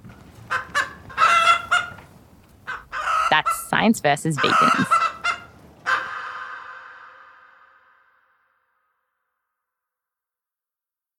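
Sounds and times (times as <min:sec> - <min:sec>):
chickens clucking and squawking: 0:00.5 - 0:07.3
speech: 0:03.8 - 0:05.0.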